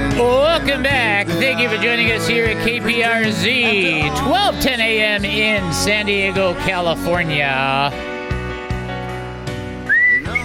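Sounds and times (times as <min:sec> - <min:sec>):
music: 0:00.0 - 0:10.4
speech: 0:00.2 - 0:08.1
radio host whistling a short melody on air: 0:09.8 - 0:10.4.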